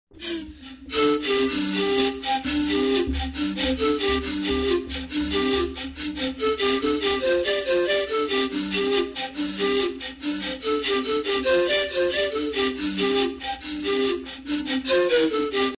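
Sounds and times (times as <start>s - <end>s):
Cuna Panama flute duet: 0.1s - 15.7s.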